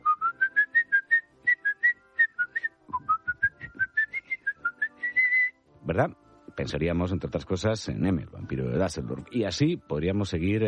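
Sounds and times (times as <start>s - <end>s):
person whistling a well-known film melody: 0.0s - 5.6s
speech: 5.9s - 10.6s.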